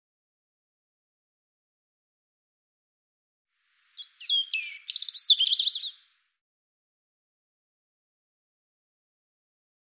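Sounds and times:
European robin singing: 3.8 - 6.2.

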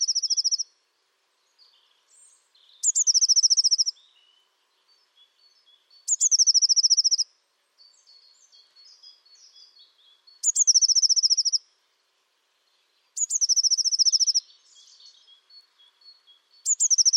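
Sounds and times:
bird trilling: 0.0 - 0.6, 2.8 - 4.0, 6.1 - 7.2, 10.4 - 11.6, 13.2 - 14.4, 16.6 - 17.1
soft bird chatter: 0.0 - 17.1.

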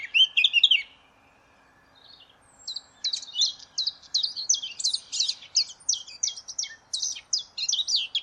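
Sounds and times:
Eurasian blackcap song: 0.0 - 8.2.

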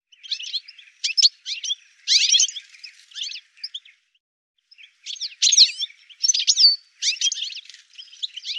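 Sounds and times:
bird twittering in quick high chirps: 0.1 - 4.0, 4.7 - 8.5.

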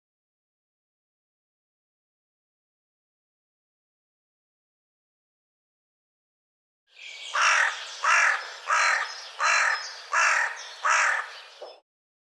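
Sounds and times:
bird harsh cawing calls: 7.0 - 11.8.

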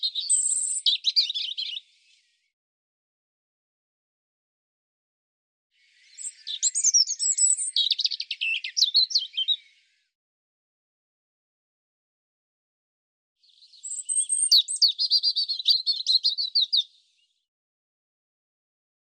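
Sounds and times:
European robin song of high whistle, twitter and jumbled warble: 0.0 - 2.5, 5.8 - 10.2, 13.4 - 17.5.

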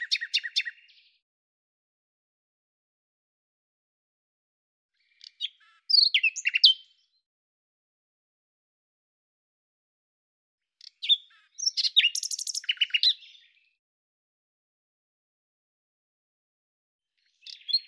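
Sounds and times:
common nightingale song: 0.0 - 1.2, 5.0 - 7.2, 10.8 - 13.8, 17.2 - 17.8.

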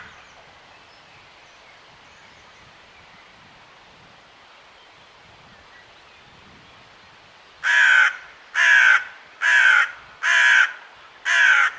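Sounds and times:
bird uttering loud rasping caws: 7.6 - 11.7.

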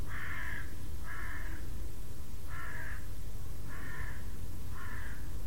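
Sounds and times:
bird harsh cawing calls: 0.1 - 1.7, 2.5 - 3.1, 3.7 - 5.3.

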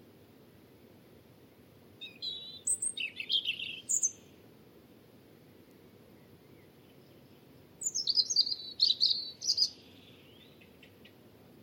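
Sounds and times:
European robin singing a high descending warbled phrase: 2.0 - 4.2, 7.8 - 10.7.

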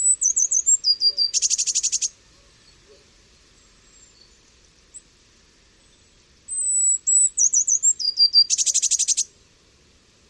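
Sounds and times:
Eurasian blue tit call with high thin notes and buzzy churr: 0.0 - 2.1, 6.5 - 9.3.

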